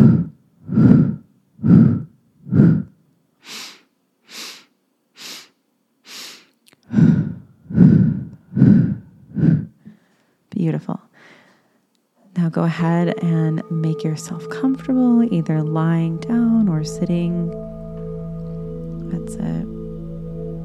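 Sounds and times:
breathing in through the nose and out through the mouth: 0.0 - 10.5, 11.1 - 11.9
speech: 12.4 - 17.8, 19.1 - 19.7.

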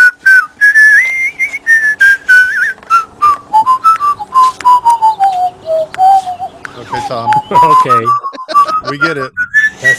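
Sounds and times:
person whistling a bright bouncy melody: 0.0 - 9.9
laughter: 6.8 - 9.4
speech: 7.1 - 8.2, 8.9 - 9.9.

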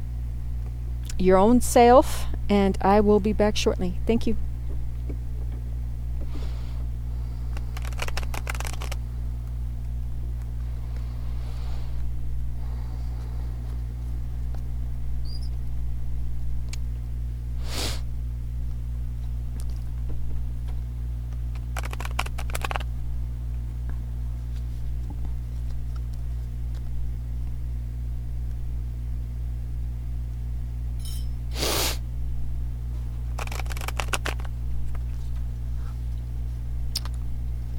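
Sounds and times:
steady low electrical hum: 0.0 - 37.7
speech: 1.2 - 4.5
deck of tarot cards being shuffled: 7.5 - 9.0, 21.4 - 22.9, 33.3 - 36.2.

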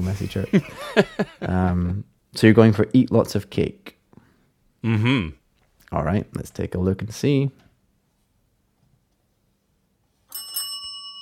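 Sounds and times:
speech: 0.0 - 4.0, 4.8 - 7.6
bright bell ding marking a correct answer: 10.3 - 11.2.

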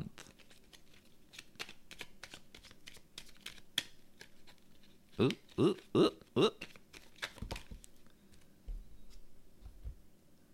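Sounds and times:
tarot cards being shuffled with crisp papery flicks: 0.2 - 5.9, 6.5 - 8.5
speech: 5.2 - 6.7.

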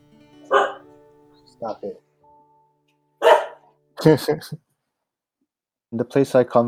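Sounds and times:
dog barking: 0.5 - 0.9, 3.2 - 3.7
speech: 1.6 - 2.1, 4.0 - 4.7, 5.9 - 6.6.

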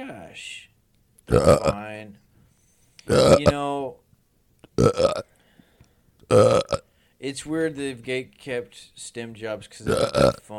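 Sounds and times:
speech: 0.1 - 0.7, 1.3 - 2.2, 3.1 - 4.0, 4.8 - 5.3, 6.3 - 10.5
person burping with gruff belches: 1.3 - 1.8, 3.1 - 3.6, 4.8 - 5.3, 6.3 - 6.8, 9.9 - 10.4.

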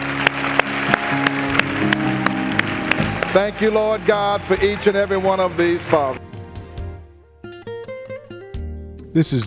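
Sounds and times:
audience applause: 0.0 - 6.2
sharp evenly spaced claps: 0.0 - 6.2
sustained music: 0.0 - 9.4
speech: 3.3 - 6.2, 9.2 - 9.4.

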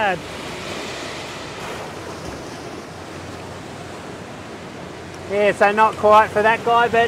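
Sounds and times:
speech: 0.0 - 0.4, 5.3 - 7.0
wind rumble: 0.0 - 5.5
ocean waves breaking at a surf peak: 0.0 - 7.0.

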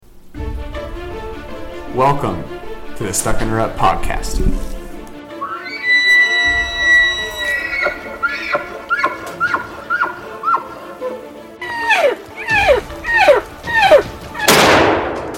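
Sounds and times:
low steady rumble: 0.0 - 5.1
speech: 2.0 - 4.7
repeated descending animal-like calls: 5.3 - 14.6
gunshot while hunting: 14.5 - 15.3.

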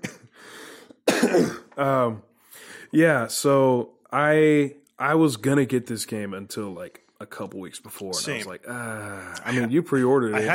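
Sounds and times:
harsh cough burst with strained hacking: 0.0 - 0.4, 1.0 - 1.8
throat clearing: 1.0 - 1.9
speech: 1.2 - 2.3, 2.9 - 10.5.

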